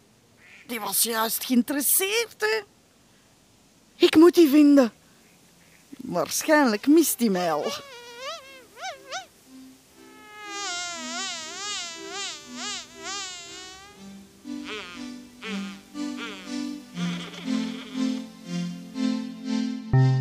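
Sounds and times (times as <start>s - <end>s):
speech: 0.7s - 2.7s, 4.0s - 5.0s, 6.0s - 8.0s
fly buzzing: 6.5s - 18.9s
plucked bass-and-tone musical accompaniment: 19.9s - 20.1s.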